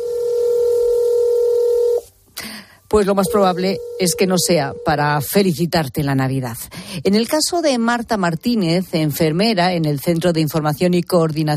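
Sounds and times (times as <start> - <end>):
steady telephone tone on an emergency service line: 0.0 - 2.1, 2.9 - 5.4
speech: 2.9 - 11.5.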